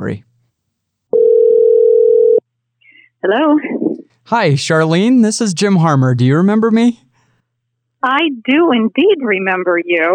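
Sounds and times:
speech: 0:00.0 - 0:00.3, 0:03.2 - 0:07.0, 0:08.0 - 0:10.1
telephone dial tone as a phone call is placed: 0:01.1 - 0:02.4.

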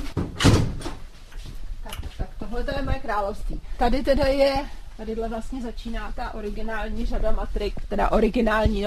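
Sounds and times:
door being pushed shut with a heavy thud: 0:00.1 - 0:00.9
speech: 0:02.5 - 0:08.8.

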